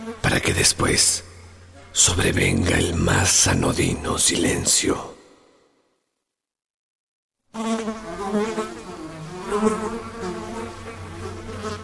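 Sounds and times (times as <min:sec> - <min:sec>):
fly wings buzzing: 0:00.0 - 0:00.2, 0:07.5 - 0:11.8
speech: 0:00.1 - 0:01.3, 0:02.0 - 0:05.2.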